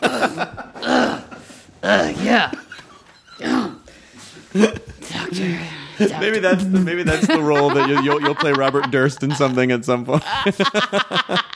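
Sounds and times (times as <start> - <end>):
short throaty burps: 0.0 - 2.5, 3.4 - 3.8
speech: 1.9 - 2.6, 6.0 - 11.5
laughter: 6.0 - 11.5.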